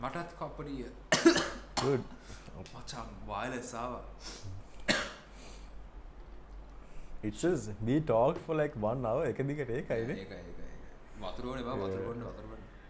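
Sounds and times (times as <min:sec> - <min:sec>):
speech: 0:00.0 - 0:05.1, 0:07.2 - 0:10.6, 0:11.2 - 0:12.6
low hum: 0:00.0 - 0:12.8
cough: 0:01.1 - 0:02.0, 0:04.8 - 0:05.3.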